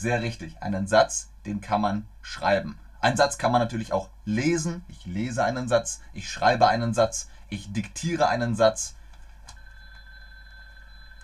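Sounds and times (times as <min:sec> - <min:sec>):
speech: 0:00.0 - 0:09.0
low hum: 0:00.0 - 0:11.2
telephone ringing with a steady electronic tone: 0:09.5 - 0:11.2.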